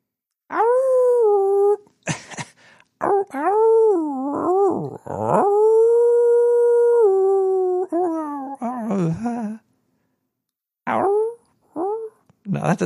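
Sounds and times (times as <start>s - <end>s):
person imitating a dog howling: 0.5s - 1.8s, 3.0s - 9.6s, 10.9s - 12.2s
speech: 12.6s - 12.8s.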